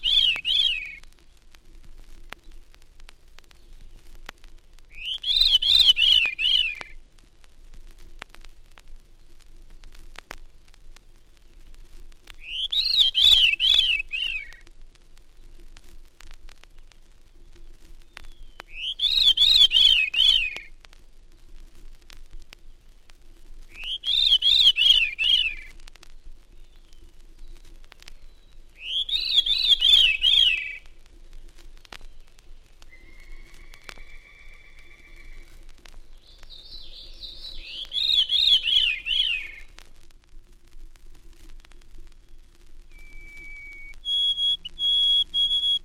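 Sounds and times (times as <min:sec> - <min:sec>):
Veery singing descending spiraling song: 0:00.0 - 0:01.0, 0:04.9 - 0:06.9, 0:12.4 - 0:14.6, 0:18.2 - 0:20.7, 0:23.7 - 0:25.7, 0:27.6 - 0:39.8, 0:42.9 - 0:45.8
faint hiss: 0:00.0 - 0:45.8.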